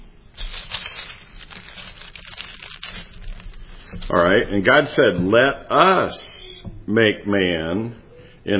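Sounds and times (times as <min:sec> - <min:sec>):
curled paper sheet rustling and crinkling being uncurled and handled: 0:00.4 - 0:05.0
speech: 0:03.9 - 0:06.2, 0:06.9 - 0:08.5.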